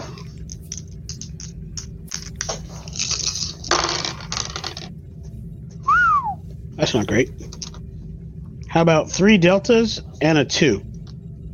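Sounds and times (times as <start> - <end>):
low hum: 0.0 - 11.5
dice rattling on a table: 0.2 - 4.9
speech: 6.8 - 7.5, 8.8 - 10.9.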